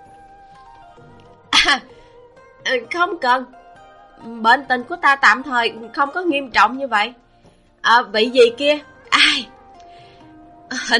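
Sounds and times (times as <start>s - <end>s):
woman giving a short dry cough: 1.5s - 1.9s, 9.1s - 9.5s
speech: 1.6s - 2.0s, 2.6s - 3.6s, 4.2s - 7.2s, 7.8s - 9.5s, 10.8s - 10.9s.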